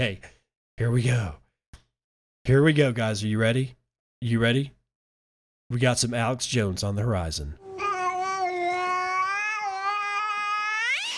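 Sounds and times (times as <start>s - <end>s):
speech: 0.0s - 1.4s, 2.4s - 4.8s, 5.7s - 7.6s
cat meowing long and loud: 7.8s - 11.1s.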